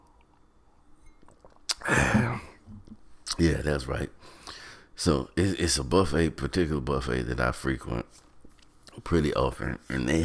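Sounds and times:
person sipping a drink: 0.0 - 3.0
speech: 3.4 - 8.2, 9.0 - 10.2.

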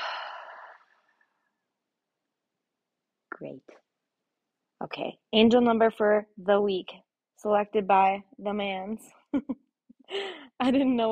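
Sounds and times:
deep exhale through an open mouth during a breathing exercise: 0.0 - 1.1
speech: 3.4 - 3.9, 4.8 - 11.1.

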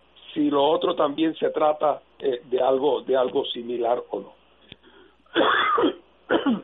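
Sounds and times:
speech: 0.4 - 4.4, 5.3 - 6.6
person clearing throat: 5.3 - 6.6
person coughing: 5.3 - 6.6.

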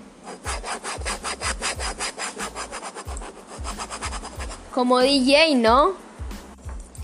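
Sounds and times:
ruler scraped back and forth across a folder: 0.2 - 4.6
speech: 4.8 - 6.0.

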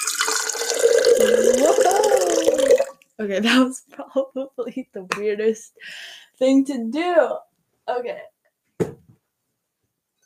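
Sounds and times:
water pouring from a heavy pitcher into a container: 0.0 - 3.0
speech: 3.2 - 9.0.

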